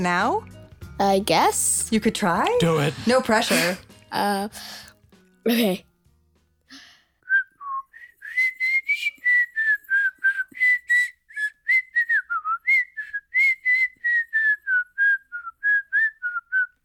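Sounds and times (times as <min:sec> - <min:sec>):
speech: 0:00.0 - 0:05.9
backwards whistling while breathing in: 0:07.2 - 0:16.8.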